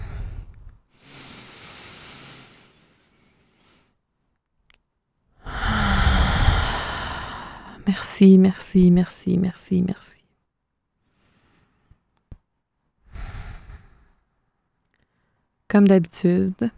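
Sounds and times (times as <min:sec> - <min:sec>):
group taking a deep breath in and out: 0:00.0 - 0:04.0, 0:05.4 - 0:07.9, 0:13.1 - 0:14.2
speech: 0:07.9 - 0:10.2, 0:15.7 - 0:16.7.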